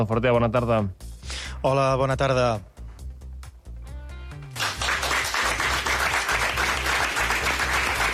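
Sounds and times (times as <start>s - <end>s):
speech: 0.0s - 1.0s, 1.6s - 2.7s
sizable crowd applauding at a signing ceremony: 4.6s - 8.1s.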